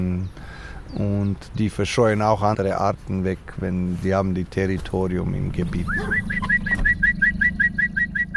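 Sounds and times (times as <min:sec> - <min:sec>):
speech: 0:00.0 - 0:06.8
steady low rumble: 0:05.2 - 0:08.3
man whistling bird-like chirps imitating a bird call: 0:05.9 - 0:08.3.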